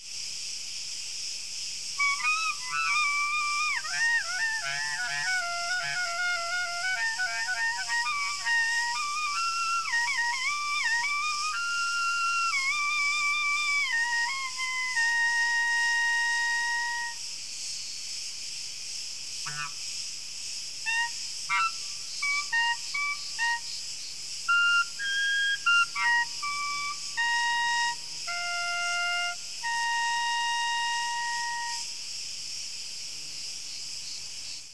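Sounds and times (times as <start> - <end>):
crickets chirping outdoors: 0.0 - 34.7.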